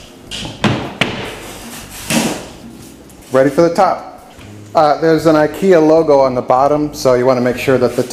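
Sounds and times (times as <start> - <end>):
cabinet corner door thudding while being fitted: 0.3 - 1.4
speech: 3.3 - 4.1, 4.7 - 8.1.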